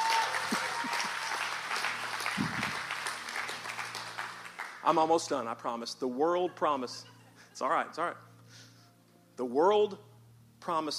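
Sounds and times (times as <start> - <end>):
crowd applauding: 0.0 - 5.3
speech: 4.9 - 8.3, 9.4 - 10.9.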